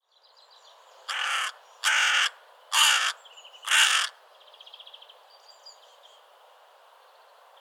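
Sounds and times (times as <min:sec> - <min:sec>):
carrion crow cawing: 0:01.1 - 0:04.2.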